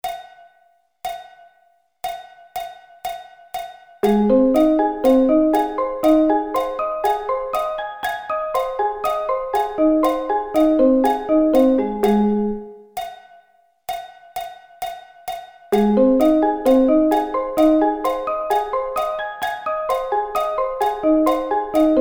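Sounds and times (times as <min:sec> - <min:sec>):
A flat arpeggio inversions: 0:04.0 - 0:12.9, 0:15.8 - 0:21.9.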